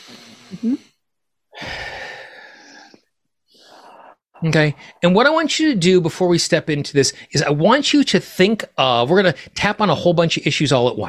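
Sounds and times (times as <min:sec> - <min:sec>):
deep breath taken during a hand-tapping exercise: 0:00.0 - 0:05.0
speech: 0:00.6 - 0:00.9, 0:04.4 - 0:11.0.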